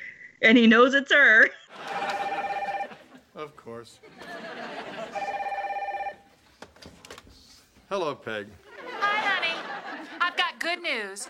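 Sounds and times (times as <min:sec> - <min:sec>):
speech: 0:00.4 - 0:01.7, 0:03.4 - 0:04.7, 0:07.9 - 0:08.6, 0:10.3 - 0:11.2
telephone ringing with trilling electronic burst: 0:01.7 - 0:03.1, 0:04.9 - 0:06.3
laughter: 0:01.7 - 0:05.6, 0:08.6 - 0:11.2.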